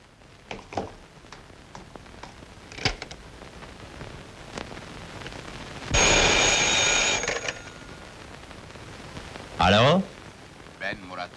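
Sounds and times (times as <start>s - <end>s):
faint scattered clicks and taps: 0.5s - 3.2s
telephone ringing during a call: 5.9s - 7.9s.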